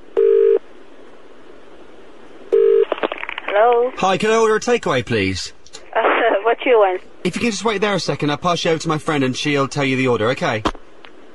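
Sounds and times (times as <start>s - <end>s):
steady electronic telephone tones: 0.2s - 0.6s, 2.5s - 3.0s
speech: 3.9s - 5.6s, 6.5s - 10.8s.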